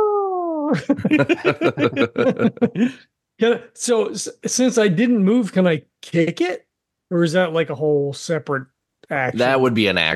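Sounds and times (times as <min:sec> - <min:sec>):
voice imitating an elephant trumpeting: 0:00.0 - 0:00.9
laughter: 0:00.7 - 0:03.0
speech: 0:00.7 - 0:10.1.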